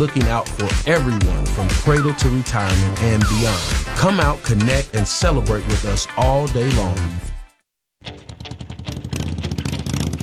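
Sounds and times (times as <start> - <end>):
speech: 0.0 - 7.3
motorcycle engine revving: 8.1 - 10.2.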